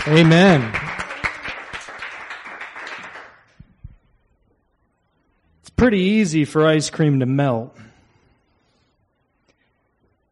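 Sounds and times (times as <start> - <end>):
speech: 0.0 - 0.8, 5.8 - 7.9
audience clapping and cheering: 0.0 - 3.6.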